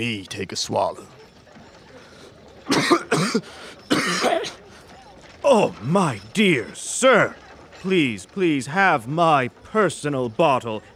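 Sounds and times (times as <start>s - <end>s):
speech: 0.0s - 1.2s, 2.7s - 4.6s, 5.4s - 10.9s
raspy harsh coughs: 2.7s - 4.7s.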